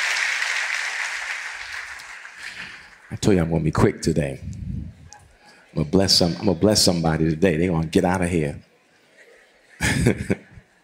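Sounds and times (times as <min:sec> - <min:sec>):
crowd applauding with dense steady clapping: 0:00.0 - 0:03.6
speech: 0:03.1 - 0:04.6, 0:05.8 - 0:08.7, 0:09.9 - 0:10.4
laughter: 0:09.1 - 0:10.8.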